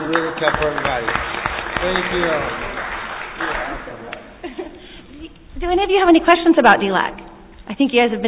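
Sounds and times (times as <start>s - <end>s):
room full of people applauding: 0.0s - 4.4s
speech: 0.1s - 2.7s, 5.6s - 8.2s.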